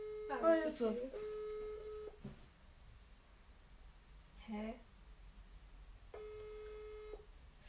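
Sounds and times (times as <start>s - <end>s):
telephone ringback tone on an unanswered outgoing call: 0.0s - 0.4s, 1.2s - 2.2s, 6.2s - 7.2s
faint hiss: 0.0s - 7.6s
speech: 0.3s - 1.3s, 4.5s - 4.9s.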